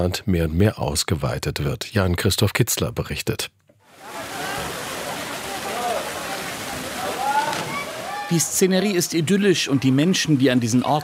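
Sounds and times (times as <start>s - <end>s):
speech: 0.0s - 3.6s, 8.3s - 11.0s
water gushing from thick pipe into pool: 3.9s - 11.0s.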